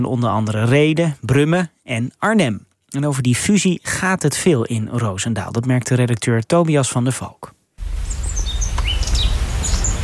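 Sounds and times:
speech: 0.0s - 7.6s
small birds chirping in a garden: 7.9s - 10.0s.

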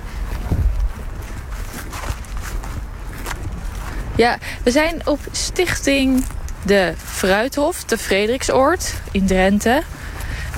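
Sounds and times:
footsteps crunching outdoors at an apple and pear orchard in Frederiksoord, Drenthe, Netherlands: 0.0s - 10.5s
low rumble of wind or handling noise: 0.0s - 10.5s
speech: 4.2s - 10.0s.

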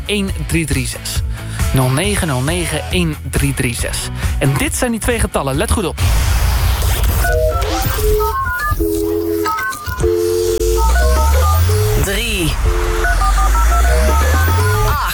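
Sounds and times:
speech: 0.1s - 6.4s
sweeping whooshing electronic sounds: 6.0s - 15.1s
telephone keypad tones for digits three and eight: 7.2s - 15.1s.

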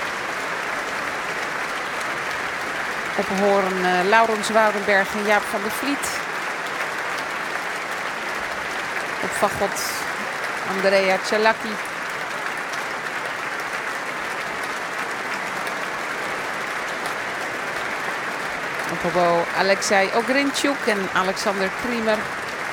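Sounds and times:
large audience applauding orchestra soloists: 0.0s - 22.7s
speech: 3.2s - 6.2s, 9.3s - 10.0s, 10.7s - 11.9s, 19.0s - 22.4s.

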